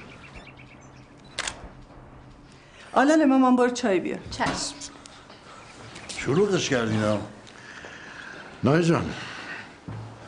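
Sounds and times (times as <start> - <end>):
camera shutter firing to take a photo: 1.2 - 1.6
speech: 2.9 - 5.0, 6.2 - 7.4, 8.6 - 9.3.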